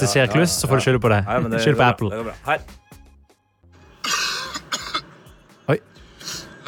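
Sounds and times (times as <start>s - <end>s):
speech: 0.0s - 2.9s, 5.7s - 5.9s
man clearing throat: 4.0s - 5.1s
man coughing: 4.0s - 5.1s.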